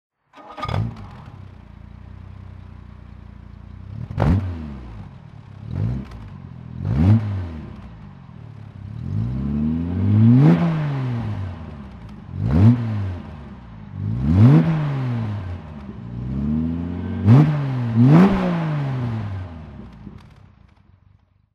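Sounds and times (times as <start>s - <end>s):
Jaguar E-Type engine throttle: 3.7s - 20.4s.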